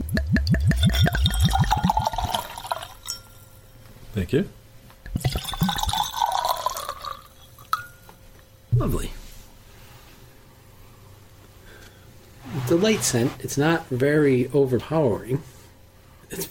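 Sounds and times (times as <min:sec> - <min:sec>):
wine pouring from a bottle into a glass: 0:00.5 - 0:03.5, 0:05.1 - 0:08.0
light glass clink: 0:00.5 - 0:03.8, 0:05.1 - 0:08.2
speech: 0:04.2 - 0:04.6, 0:12.8 - 0:15.5.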